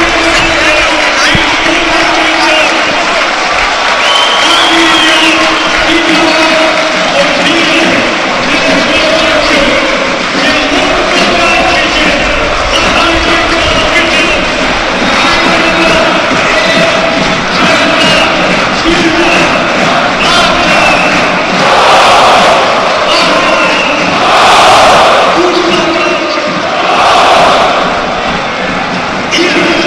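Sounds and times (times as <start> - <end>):
large stadium crowd cheering after a goal: 0.0 - 29.8
whistles in a stadium crowd: 4.0 - 6.2, 18.0 - 18.4, 19.4 - 21.5, 23.1 - 24.2.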